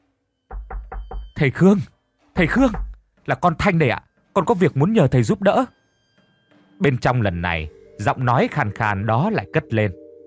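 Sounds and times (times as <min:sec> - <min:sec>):
firm dull knocks on a door: 0:00.5 - 0:01.4, 0:02.4 - 0:03.2
speech: 0:01.4 - 0:05.8, 0:06.8 - 0:10.0.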